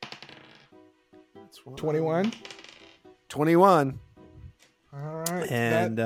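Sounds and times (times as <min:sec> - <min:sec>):
dice clattering across a tabletop: 0:00.0 - 0:00.7, 0:02.2 - 0:03.0
speech: 0:01.5 - 0:02.6, 0:03.3 - 0:04.1, 0:04.9 - 0:06.0.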